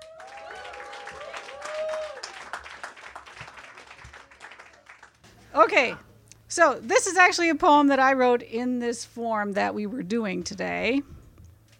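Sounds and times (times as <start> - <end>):
audience whistle or cheer: 0.0 - 2.4
audience applause: 0.0 - 5.2
speech: 5.6 - 11.1.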